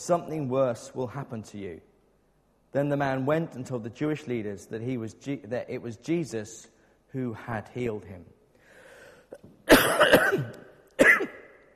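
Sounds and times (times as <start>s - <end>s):
speech: 0.0s - 1.9s, 2.7s - 8.4s, 9.3s - 10.6s
throat clearing: 9.3s - 11.4s
person coughing: 9.3s - 11.6s.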